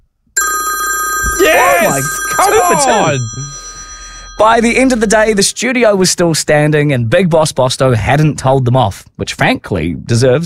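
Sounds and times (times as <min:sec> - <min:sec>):
telephone ringing: 0:00.4 - 0:05.6
speech: 0:01.8 - 0:03.5, 0:04.4 - 0:10.4.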